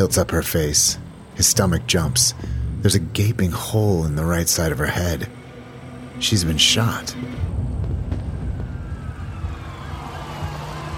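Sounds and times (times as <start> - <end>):
speech: 0.0 - 5.4, 6.2 - 7.7
emergency vehicle siren wailing: 8.2 - 10.9.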